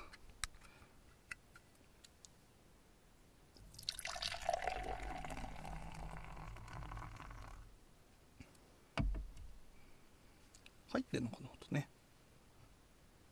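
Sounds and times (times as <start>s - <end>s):
beer pouring into a glass: 3.7s - 7.7s
speech: 11.0s - 12.0s.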